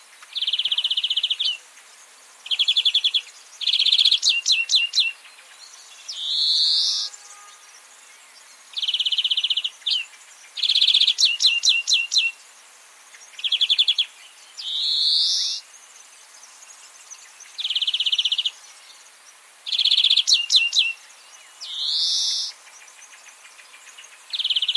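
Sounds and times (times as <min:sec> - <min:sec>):
European greenfinch Chloris chloris singing wheezy buzzes and rattling trills: 0:00.2 - 0:01.8, 0:02.4 - 0:15.8, 0:16.5 - 0:24.7.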